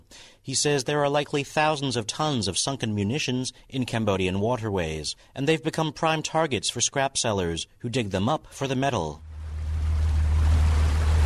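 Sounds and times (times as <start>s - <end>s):
speech: 0.4s - 9.3s
constant wash of ocean water: 9.2s - 11.2s
small dive boat engine droning on the ocean off Cambodia's coast: 9.2s - 11.2s
wind noise: 9.2s - 11.2s.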